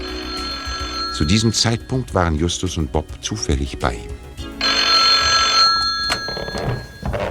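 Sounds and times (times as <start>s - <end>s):
telephone bell ringing: 0.0s - 1.9s, 4.6s - 7.3s
speech: 1.2s - 4.1s
handling knocks: 5.8s - 7.3s.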